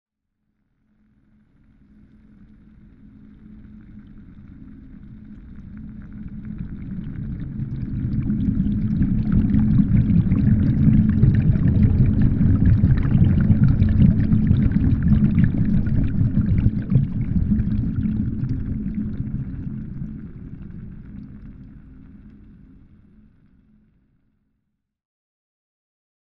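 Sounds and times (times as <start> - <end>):
submarine moving past: 8.2 - 19.2.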